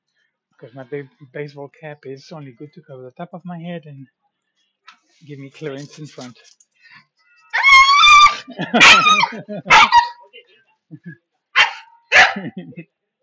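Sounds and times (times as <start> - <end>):
speech: 0.6 - 4.2, 5.2 - 7.1, 8.5 - 10.1, 10.9 - 11.2, 12.4 - 13.0
dog barking: 7.6 - 10.3, 11.6 - 12.6
laughter: 8.3 - 11.2, 12.3 - 12.8.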